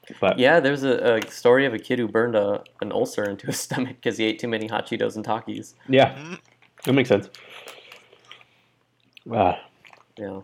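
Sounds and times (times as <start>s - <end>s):
speech: 0.1s - 7.8s, 9.2s - 10.4s
person sipping homemade lemon lemongrass honey cinnamon tea: 6.1s - 6.6s.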